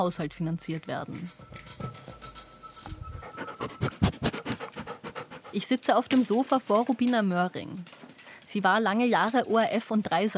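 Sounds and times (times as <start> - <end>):
speech: 0.0 - 2.1, 5.5 - 10.3
dog panting and sniffing at a microphone: 1.3 - 6.4
soft scratchy rustling: 1.3 - 6.8.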